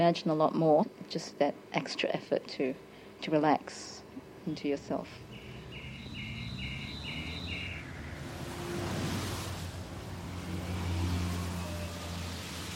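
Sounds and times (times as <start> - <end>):
speech: 0.0 - 5.3
cars swooshing along a street: 5.2 - 12.7
quick high chirps: 5.3 - 7.9.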